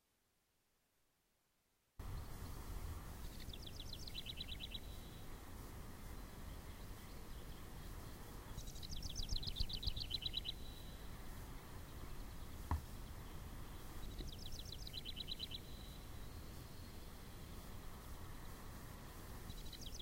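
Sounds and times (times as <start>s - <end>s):
birds in Indian Springs: 2.0s - 20.0s
House Wren in Indian Springs: 3.2s - 5.2s, 6.5s - 11.1s, 11.8s - 17.6s, 19.5s - 20.0s.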